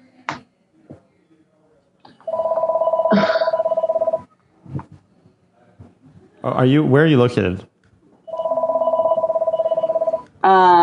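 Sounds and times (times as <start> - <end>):
telephone ringing with a trilling bell tone: 2.3 - 4.2, 8.3 - 10.2
speech: 3.1 - 3.4, 6.5 - 7.7.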